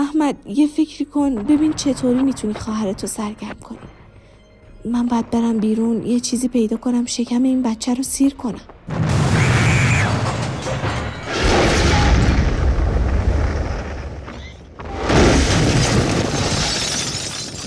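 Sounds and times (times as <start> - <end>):
speech: 0.1 - 3.9, 4.8 - 9.1
explosion: 8.9 - 17.6.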